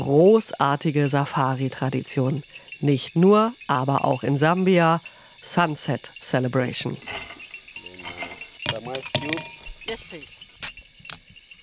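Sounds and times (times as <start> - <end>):
speech: 0.0 - 7.3, 8.7 - 10.4
insects chirping: 0.0 - 11.6
gin bottles, tonic water, ice and cups clinking on a Jeep hood: 7.0 - 11.6.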